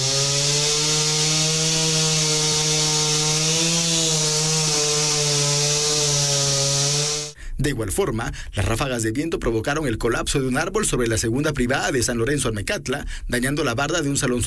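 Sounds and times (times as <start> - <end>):
chainsaw cutting into a huge fallen tree blocking a road: 0.0 - 7.4
speech: 7.6 - 14.4.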